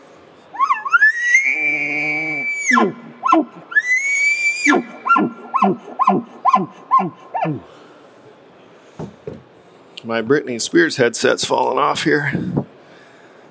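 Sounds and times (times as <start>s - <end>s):
person imitating an elk challenge bugle: 0.6s - 7.7s
speech: 10.1s - 12.6s.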